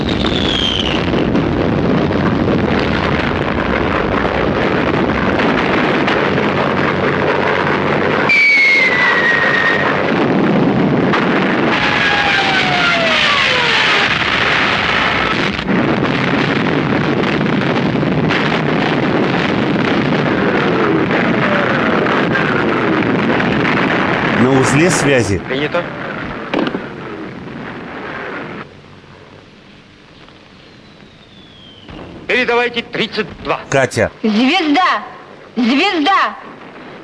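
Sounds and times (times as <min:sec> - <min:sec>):
artillery firing in a wartime battle scene: 0:00.0 - 0:28.6
descending whistles: 0:00.1 - 0:01.1, 0:08.2 - 0:10.1, 0:30.6 - 0:32.0
speech: 0:24.8 - 0:26.0, 0:32.7 - 0:36.4.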